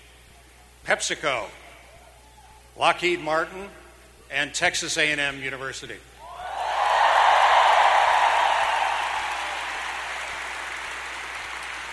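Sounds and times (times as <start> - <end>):
speech: 0.8 - 1.6, 2.8 - 6.1
large audience applauding sponsoring organizations: 6.2 - 11.9.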